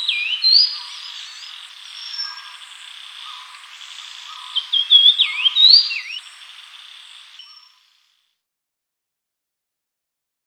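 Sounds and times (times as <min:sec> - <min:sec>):
grey-cheeked fulvetta singing whistled phrases: 0:00.0 - 0:06.4
faint hiss: 0:00.0 - 0:08.2.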